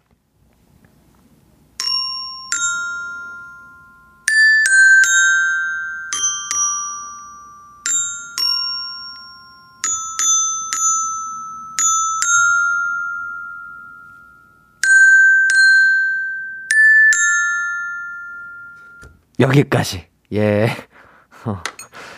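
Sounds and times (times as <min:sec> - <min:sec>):
xylophone playing a simple children's melody: 0:01.8 - 0:19.2
speech: 0:19.4 - 0:21.7.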